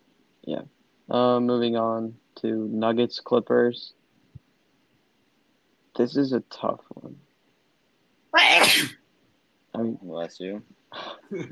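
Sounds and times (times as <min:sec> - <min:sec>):
speech: 0:00.4 - 0:04.0, 0:06.0 - 0:07.2, 0:09.8 - 0:11.5
person sneezing: 0:08.4 - 0:09.0.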